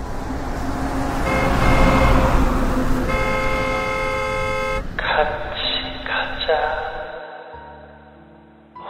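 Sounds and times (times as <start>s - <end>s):
rumbling car engine and road noise: 0.0s - 7.2s
approaching car's horn honking at a pedestrian: 0.6s - 7.2s.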